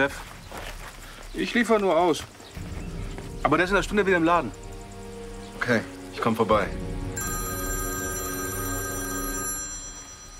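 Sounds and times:
speech: 0:00.0 - 0:00.3, 0:01.3 - 0:02.7, 0:03.4 - 0:04.6, 0:05.6 - 0:06.9
telephone ringing with an unanswered work call: 0:07.2 - 0:10.3.

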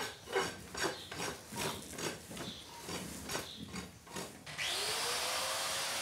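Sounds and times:
angle grinder trimming a cow's hoof: 0:00.0 - 0:05.9.

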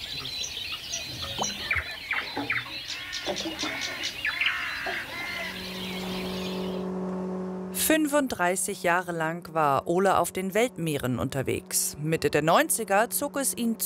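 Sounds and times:
nightingale singing at night: 0:00.0 - 0:06.9
steady low hum: 0:03.4 - 0:13.8
speech: 0:08.0 - 0:13.8.

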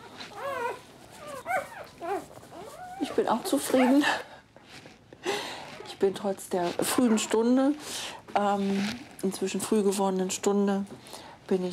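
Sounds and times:
first-time mother dog whimpering with her newborn puppies: 0:00.0 - 0:04.1, 0:06.8 - 0:07.6
speech: 0:03.1 - 0:04.3, 0:06.0 - 0:11.7.

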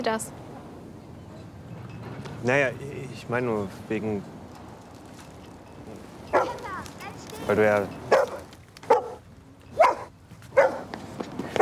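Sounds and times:
speech: 0:00.0 - 0:00.4, 0:02.4 - 0:04.4, 0:07.5 - 0:08.0
dog barking: 0:06.3 - 0:06.7, 0:08.1 - 0:09.2, 0:09.8 - 0:10.9.

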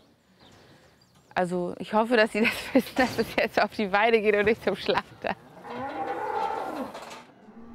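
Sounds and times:
speech: 0:01.4 - 0:05.4
pregnant heifer mooing in a livestock trailer: 0:05.6 - 0:07.7.

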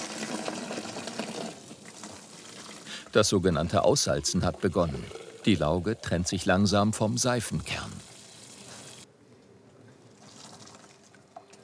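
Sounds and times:
soap mixture boiling in large industrial kettle: 0:02.8 - 0:06.4
speech: 0:03.1 - 0:08.0.

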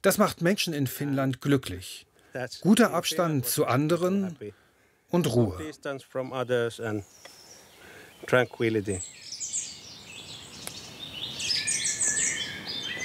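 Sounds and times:
speech: 0:00.0 - 0:07.4, 0:08.2 - 0:09.2
birds chirping and singing outdoors: 0:06.2 - 0:13.0.

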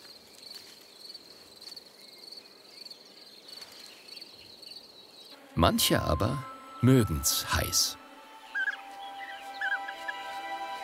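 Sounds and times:
European bee-eater rolling chirps: 0:02.0 - 0:10.3
speech: 0:05.6 - 0:08.0.

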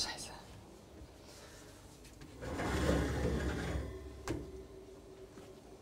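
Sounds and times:
door sliding shut: 0:02.4 - 0:04.5.

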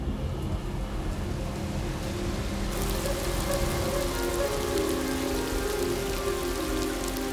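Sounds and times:
heavy rain pouring on the ground: 0:00.0 - 0:07.3.

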